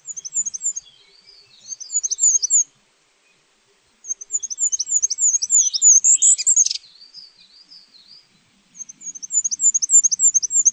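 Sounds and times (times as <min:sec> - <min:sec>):
goldcrest singing high thin see-sawing phrases: 0:00.0 - 0:02.7, 0:04.0 - 0:08.2, 0:08.8 - 0:10.7.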